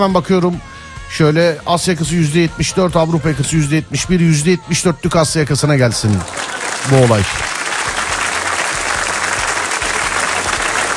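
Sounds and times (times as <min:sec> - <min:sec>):
speech: 0:00.0 - 0:07.5
applause from a sizable crowd: 0:05.9 - 0:10.9.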